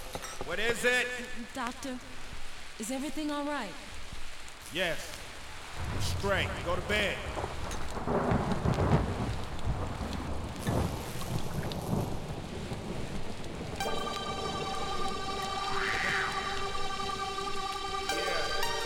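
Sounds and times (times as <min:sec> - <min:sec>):
heavy rain pouring in a thunderstorm: 0:00.0 - 0:18.8
speech: 0:00.5 - 0:02.2, 0:02.8 - 0:03.9, 0:04.7 - 0:05.2, 0:05.8 - 0:08.4
deep thunder rumbling: 0:05.5 - 0:18.8
sustained tonal drone with a rising swell: 0:13.8 - 0:18.8.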